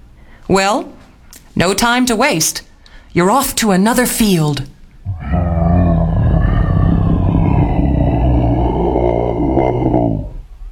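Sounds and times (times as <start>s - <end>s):
speech: 0.5s - 1.0s, 1.6s - 4.7s
lion roaring: 5.0s - 10.6s.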